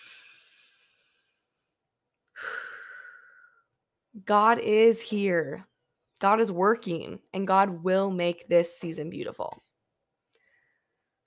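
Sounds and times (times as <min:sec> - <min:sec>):
person taking a slow deep breath in and out: 0:00.0 - 0:01.6, 0:02.3 - 0:03.7, 0:10.4 - 0:11.0
speech: 0:04.2 - 0:09.6.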